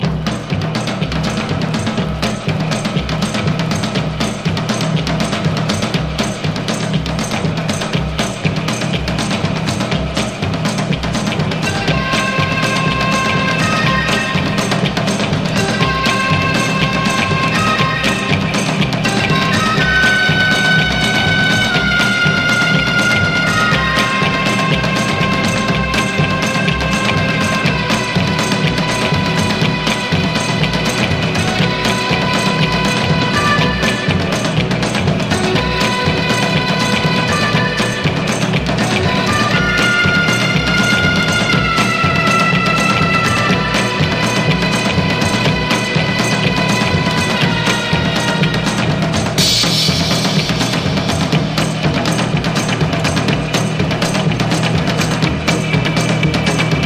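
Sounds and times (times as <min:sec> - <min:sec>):
drums: 0:00.0 - 0:56.8.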